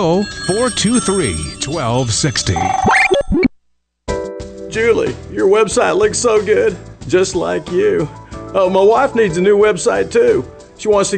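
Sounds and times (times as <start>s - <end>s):
speech: 0.0s - 3.4s, 4.7s - 11.1s
telephone ringing with a bright electronic trill: 0.0s - 3.4s.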